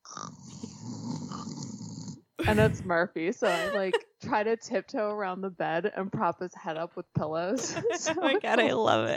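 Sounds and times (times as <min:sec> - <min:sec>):
person imitating a big dog with sleep apnea snoring: 0:00.0 - 0:02.3
speech: 0:02.5 - 0:09.1
laughter: 0:03.4 - 0:04.0, 0:07.6 - 0:08.7.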